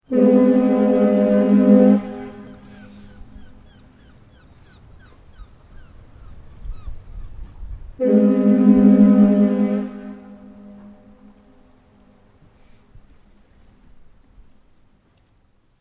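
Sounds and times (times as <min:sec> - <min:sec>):
large ship liner horn hooting: 0:00.0 - 0:04.0, 0:08.0 - 0:12.8.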